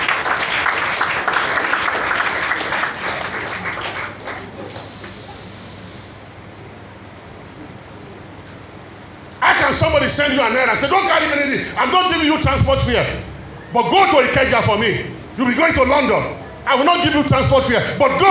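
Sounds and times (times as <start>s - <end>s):
audience clapping hands: 0.0s - 5.2s
speech: 9.7s - 18.2s.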